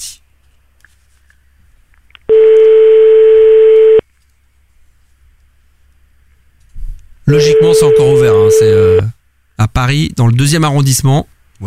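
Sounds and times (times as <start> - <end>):
steady telephone tone: 2.3 - 4.0, 7.3 - 9.1
speech: 7.3 - 11.6.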